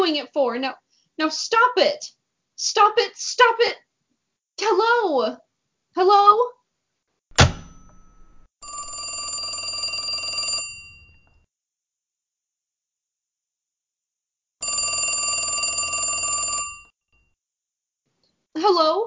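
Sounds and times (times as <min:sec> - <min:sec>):
speech: 0:00.1 - 0:03.8, 0:04.6 - 0:05.4, 0:06.0 - 0:06.6, 0:18.6 - 0:19.0
sharp knock: 0:07.3 - 0:08.5
old-fashioned telephone bell ringing: 0:08.6 - 0:11.4, 0:14.6 - 0:17.0.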